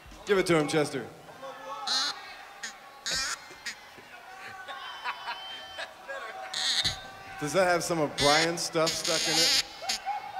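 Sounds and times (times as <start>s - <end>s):
speech: 0.3s - 1.2s, 7.4s - 9.6s
laughter: 1.8s - 7.3s, 8.1s - 10.3s
goose call blown in reedy honking blasts and squawks: 1.9s - 3.8s, 6.6s - 7.0s, 8.2s - 10.0s.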